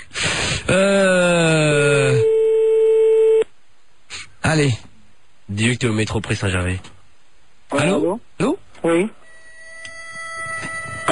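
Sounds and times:
speech: 0:00.7 - 0:01.0, 0:04.6 - 0:04.9, 0:05.5 - 0:06.9, 0:07.7 - 0:09.2
telephone tone while a call is redialed: 0:02.0 - 0:03.5, 0:09.2 - 0:11.1.

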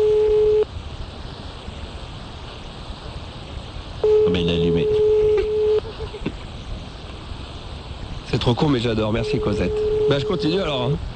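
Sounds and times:
telephone line ringing tone while calling a landline: 0:00.0 - 0:00.7, 0:04.0 - 0:05.9, 0:09.2 - 0:10.6
faint low noise: 0:00.0 - 0:11.1
speech: 0:08.5 - 0:11.1.

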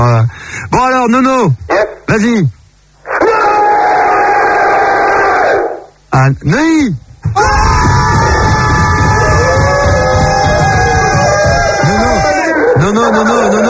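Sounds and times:
speech: 0:00.0 - 0:02.6, 0:06.2 - 0:07.6, 0:12.9 - 0:13.6
group of people shouting loudly: 0:03.1 - 0:05.9, 0:07.4 - 0:13.6.

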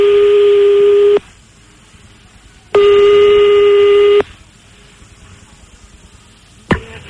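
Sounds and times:
telephone line ringing as a call is placed: 0:00.0 - 0:01.2, 0:02.8 - 0:04.2.

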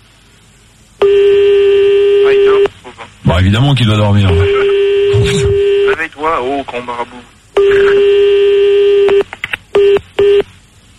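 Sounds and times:
steady telephone line tone after a call is cut off: 0:01.0 - 0:02.6, 0:04.4 - 0:05.9, 0:07.6 - 0:09.1
speech: 0:03.4 - 0:04.7, 0:06.0 - 0:07.9.

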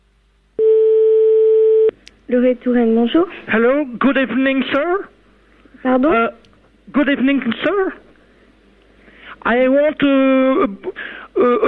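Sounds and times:
telephone ringback tone on an outgoing call: 0:00.6 - 0:01.9
speech: 0:02.3 - 0:05.1, 0:05.8 - 0:08.0, 0:09.4 - 0:11.6.

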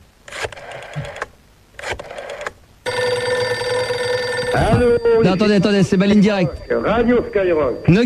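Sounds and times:
loud steady telephone ring tone: 0:02.8 - 0:08.0
speech: 0:04.6 - 0:08.0.

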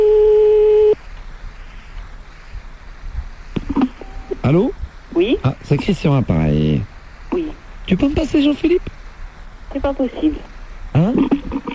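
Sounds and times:
telephone line tone while a call is redialed: 0:00.0 - 0:01.0, 0:03.8 - 0:04.4
faint telephone line hiss and low rumble: 0:00.0 - 0:11.7
speech: 0:04.5 - 0:06.9, 0:07.9 - 0:09.0, 0:09.8 - 0:11.3.

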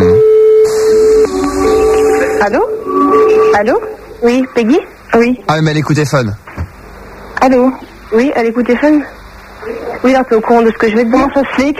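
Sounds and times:
faint hum: 0:00.0 - 0:11.7
short rising tone: 0:00.4 - 0:04.5
speech: 0:02.4 - 0:02.7, 0:03.6 - 0:06.4, 0:07.4 - 0:11.7.

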